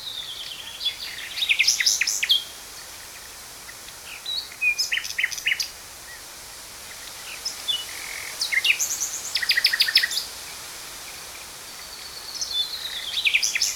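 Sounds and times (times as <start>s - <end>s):
Common Nightingale Luscinia megarhynchos singing: 0.0s - 2.6s, 3.7s - 5.8s, 7.7s - 10.3s, 11.8s - 13.7s.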